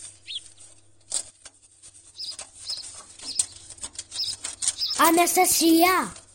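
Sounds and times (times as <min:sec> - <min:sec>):
sparrow flapping wings inside a fireplace: 0:00.0 - 0:06.3
faint high sparrow chirps: 0:00.2 - 0:00.6, 0:02.2 - 0:05.6
speech: 0:05.0 - 0:06.2.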